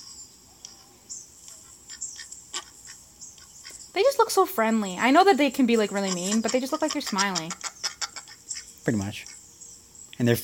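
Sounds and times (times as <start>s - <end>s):
high-pitched hiss: 0.0s - 6.9s, 7.5s - 10.4s
speech: 4.0s - 7.6s, 8.8s - 9.4s, 10.2s - 10.4s
duck quacking: 5.8s - 8.6s.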